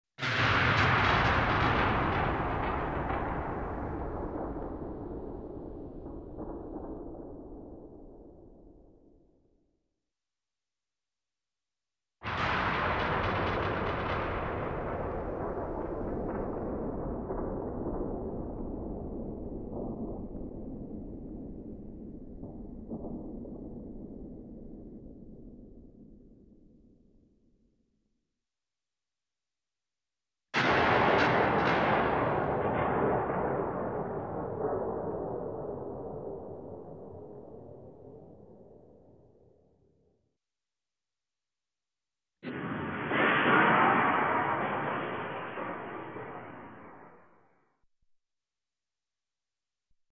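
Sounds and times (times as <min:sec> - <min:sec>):
distant explosions: 0:00.2 - 0:09.2, 0:12.2 - 0:27.3, 0:30.6 - 0:39.5, 0:42.4 - 0:47.6.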